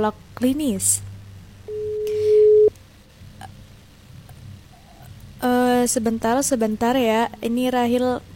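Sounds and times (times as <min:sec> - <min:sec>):
speech: 0:00.0 - 0:01.1, 0:05.8 - 0:08.3
telephone call tone as a call is placed: 0:01.7 - 0:02.7.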